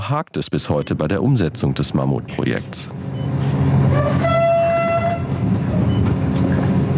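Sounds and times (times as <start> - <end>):
speech: 0.1 - 4.3
express passenger train rumbling leaving station: 0.7 - 6.9
express passenger train horn: 3.8 - 5.9.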